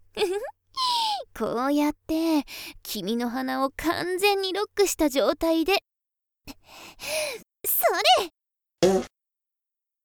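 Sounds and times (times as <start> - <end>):
speech: 0.2 - 0.6, 1.4 - 5.9, 6.5 - 9.1
fart: 8.9 - 9.1.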